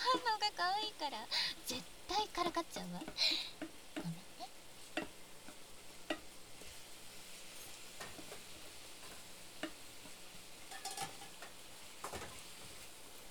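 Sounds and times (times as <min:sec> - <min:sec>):
food sizzling in a frying pan as it is flipped: 0:00.0 - 0:13.2
speech: 0:00.6 - 0:03.7
clicks and taps from the pan and utensil: 0:02.9 - 0:04.2, 0:04.8 - 0:06.8, 0:07.4 - 0:13.0.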